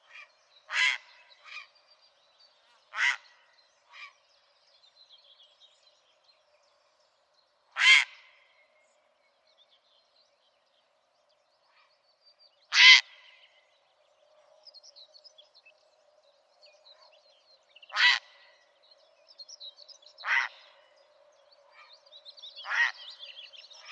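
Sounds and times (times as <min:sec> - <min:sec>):
grey heron: 0:00.0 - 0:01.8, 0:02.6 - 0:04.4, 0:07.7 - 0:09.2, 0:12.7 - 0:14.7, 0:17.9 - 0:19.1, 0:20.2 - 0:23.9.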